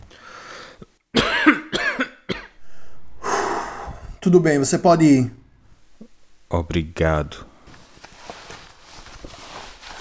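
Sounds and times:
steady hiss of noise: 0.0 - 9.9
person squatting and coughing loudly on command: 1.2 - 2.6
speech: 4.2 - 5.4, 6.5 - 7.5.

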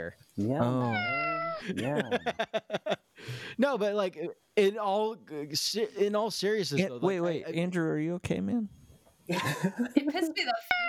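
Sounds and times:
speech: 0.0 - 10.8
person imitating a cat meow: 0.6 - 1.6
person chuckling: 1.6 - 3.0, 9.3 - 10.3.

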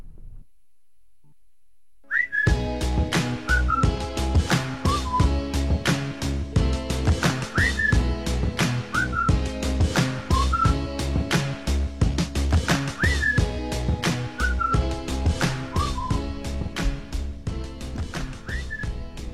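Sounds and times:
short whistle-like chirps: 2.1 - 2.6, 3.5 - 4.0, 4.8 - 5.4, 7.5 - 8.1, 8.9 - 9.4, 10.3 - 10.8, 12.9 - 13.5, 14.4 - 14.9, 15.5 - 16.3, 18.4 - 19.0
song with electronic touches, driving beat and deep bass: 2.5 - 19.3.

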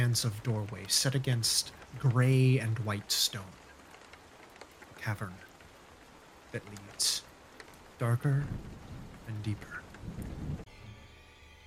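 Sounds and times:
speech: 0.0 - 3.6, 5.0 - 5.5, 6.5 - 7.3, 8.0 - 10.6
steady rain-like hiss: 0.0 - 11.6
loud thunder clap: 7.7 - 10.7.

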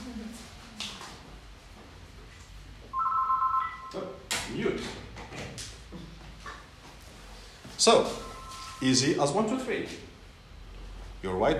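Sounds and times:
telephone ringing with electronic trill: 3.0 - 4.0, 8.2 - 8.8
speech: 7.8 - 8.2, 8.8 - 10.1, 11.2 - 11.5.

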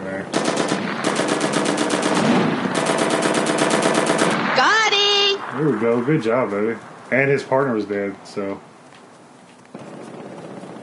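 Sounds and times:
machine gun fire in a video game: 0.3 - 6.5, 9.7 - 10.8
speech: 5.6 - 8.7.

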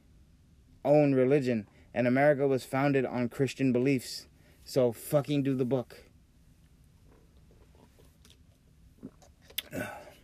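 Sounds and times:
speech: 0.8 - 6.1, 9.7 - 10.0
person drinking water: 7.1 - 10.2.

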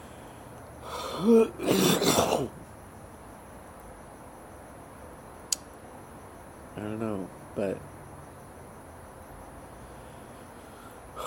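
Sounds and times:
person clearing throat: 1.2 - 2.5
person coughing: 1.2 - 2.5
speech: 1.2 - 2.6
faint click: 5.5 - 5.7.

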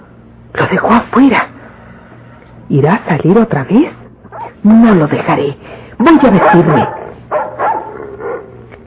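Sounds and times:
speech: 0.6 - 1.5, 2.7 - 4.0, 4.6 - 7.0
dog barking at a man: 6.3 - 8.6.

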